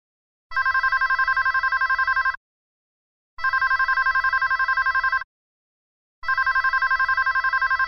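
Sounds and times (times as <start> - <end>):
telephone ringing with a rapid trilling electronic ring: 0.5 - 2.4, 3.4 - 5.2, 6.2 - 7.8.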